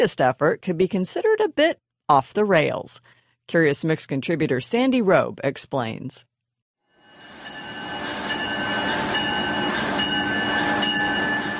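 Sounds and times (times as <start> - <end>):
speech: 0.0 - 6.3
high-speed train running on rails: 7.1 - 11.5.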